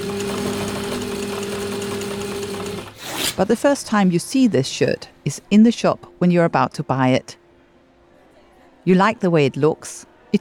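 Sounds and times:
machine sewing a shirt: 0:00.0 - 0:03.1
speech: 0:03.4 - 0:07.4, 0:08.8 - 0:10.3.

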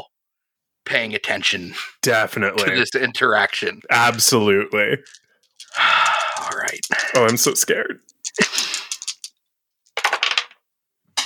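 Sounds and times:
speech: 0:00.9 - 0:05.9, 0:06.5 - 0:08.6
die thrown clattering and bouncing across a hard surface: 0:05.0 - 0:09.3, 0:10.0 - 0:10.6.

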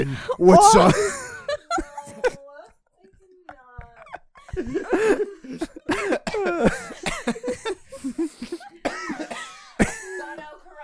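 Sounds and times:
speech: 0:00.0 - 0:01.2
laughter: 0:00.3 - 0:02.9, 0:03.6 - 0:10.3
person coughing and spluttering: 0:04.7 - 0:07.7, 0:08.5 - 0:10.5.

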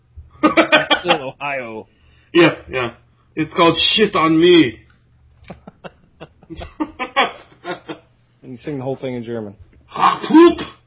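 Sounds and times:
laughter: 0:00.4 - 0:01.4, 0:05.4 - 0:08.1
speech: 0:00.5 - 0:04.8, 0:05.5 - 0:07.3, 0:08.5 - 0:10.8
sneeze: 0:09.9 - 0:10.8.

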